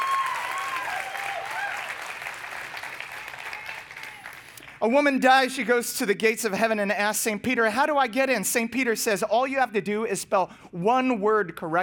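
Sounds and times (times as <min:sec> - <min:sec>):
whoops and cheers: 0:00.0 - 0:02.3, 0:03.0 - 0:04.6
congregation applause: 0:00.0 - 0:04.8
speech: 0:04.8 - 0:11.8.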